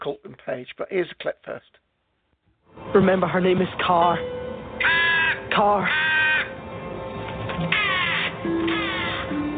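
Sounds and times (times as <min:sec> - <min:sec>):
speech: 0:00.0 - 0:01.8, 0:02.8 - 0:06.2
crow cawing with scratchy rasping calls: 0:04.8 - 0:06.6, 0:07.7 - 0:09.4.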